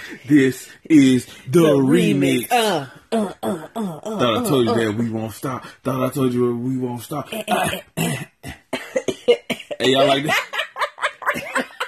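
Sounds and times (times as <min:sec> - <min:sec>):
speech: 0:00.1 - 0:08.3, 0:09.3 - 0:10.5
held hummed vocal tone: 0:01.8 - 0:05.0
sharp harsh coughs: 0:07.6 - 0:09.8
laughter: 0:08.8 - 0:11.8.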